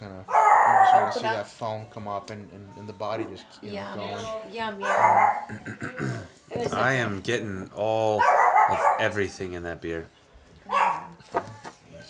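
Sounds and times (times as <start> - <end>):
small dog yapping: 0.3 - 1.2, 4.8 - 5.4, 8.2 - 9.0, 10.7 - 11.2
speech: 0.9 - 10.2.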